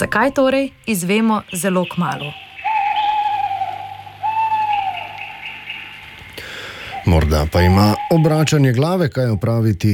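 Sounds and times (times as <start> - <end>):
speech: 0.0 - 2.5, 7.1 - 9.9
owl hooting: 0.0 - 9.9.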